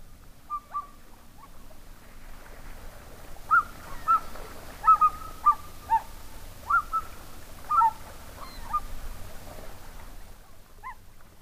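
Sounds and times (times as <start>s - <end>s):
low steady outdoor rumble: 0.0s - 11.4s
loons on a big lake in winter giving barking calls and hoots: 0.5s - 1.6s, 3.5s - 8.8s.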